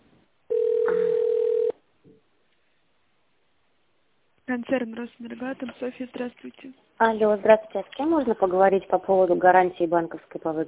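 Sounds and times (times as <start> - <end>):
telephone ring tone on the line while a call is transferred: 0.5 - 1.8
speech: 4.5 - 10.6.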